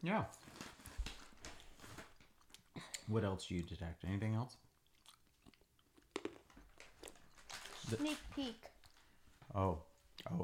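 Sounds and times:
speech: 0.0s - 0.6s, 3.1s - 4.6s, 7.9s - 8.7s, 9.5s - 10.4s
crunchy chewing of seaweed-coated laver almonds: 4.8s - 7.7s.

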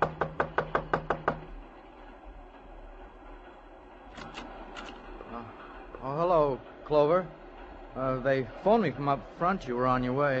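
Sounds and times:
sharp knocks and soft taps on a door: 0.0s - 1.6s
steady low rumbling background: 1.5s - 10.3s
speech: 8.4s - 10.3s.

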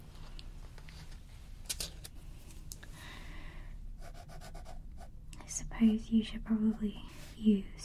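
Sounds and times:
low hum: 0.0s - 7.8s
fine liner pen colouring a page of a colouring book: 4.0s - 5.1s
speech: 5.8s - 7.8s.

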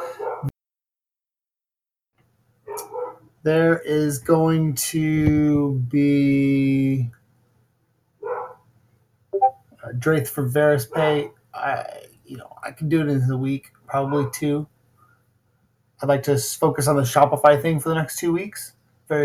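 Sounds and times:
dogs barking: 0.0s - 0.5s, 2.7s - 3.3s, 8.2s - 8.6s
speech: 3.4s - 7.2s, 9.9s - 14.7s, 16.0s - 19.2s.

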